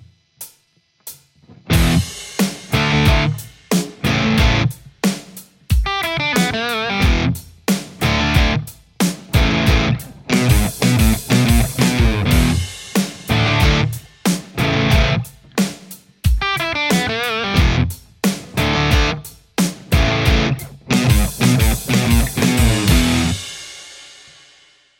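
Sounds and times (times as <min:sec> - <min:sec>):
Les Paul electric guitar: 0:01.4 - 0:04.9, 0:05.8 - 0:15.7, 0:16.4 - 0:19.3, 0:19.9 - 0:23.5.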